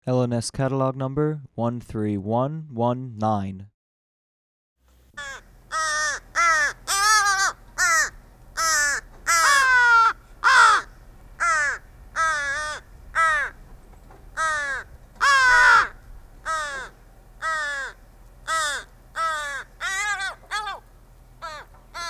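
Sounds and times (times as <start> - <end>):
speech: 0.0 - 3.7
crow cawing while feeding another crow: 5.2 - 13.6, 14.3 - 22.0.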